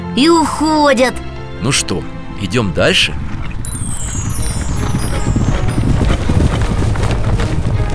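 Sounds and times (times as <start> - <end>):
speech: 0.2 - 3.3
galloping horse hooves raising dust: 3.2 - 7.9.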